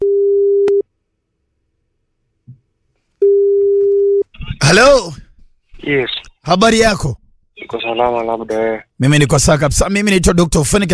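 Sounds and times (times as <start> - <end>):
steady loud low telephone line tone when placing a call: 0.0 - 0.8, 3.2 - 4.3
speech: 4.7 - 5.2, 5.8 - 10.9.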